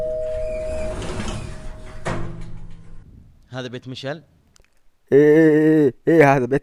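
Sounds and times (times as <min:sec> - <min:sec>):
front door creaking open: 0:00.0 - 0:03.1
speech: 0:03.6 - 0:04.4, 0:05.1 - 0:06.6.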